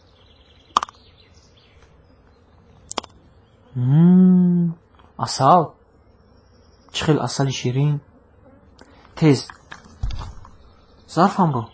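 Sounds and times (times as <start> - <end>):
bees buzzing in a nest inside a lion carcass: 0.0 - 11.7
sharp clicks: 0.7 - 1.0, 2.9 - 3.2
speech: 3.8 - 4.1, 5.2 - 5.8, 7.0 - 8.1, 9.2 - 9.6, 11.1 - 11.7.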